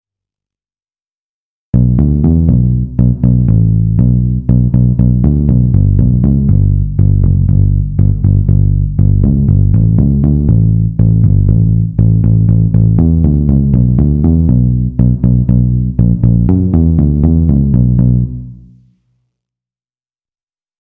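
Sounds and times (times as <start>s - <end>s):
bass played with a pick: 1.7s - 18.9s.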